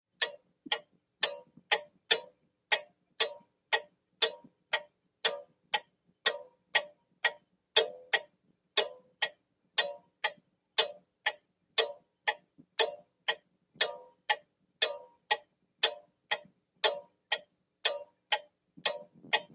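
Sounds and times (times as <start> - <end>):
grandfather clock ticking: 0.1 - 19.5.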